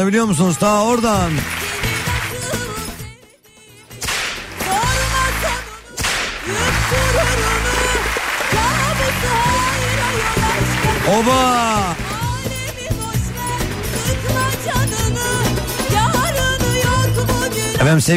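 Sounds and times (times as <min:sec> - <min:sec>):
speech: 0:00.0 - 0:01.6, 0:11.1 - 0:12.0, 0:17.8 - 0:18.1
music: 0:00.0 - 0:18.1
whip cracks: 0:04.0 - 0:04.5, 0:06.0 - 0:06.5.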